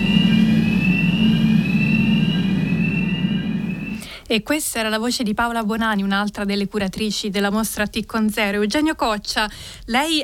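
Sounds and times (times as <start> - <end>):
particle accelerator starting up with mechanical hum and high whine: 0.0 - 4.1
speech: 4.3 - 10.2.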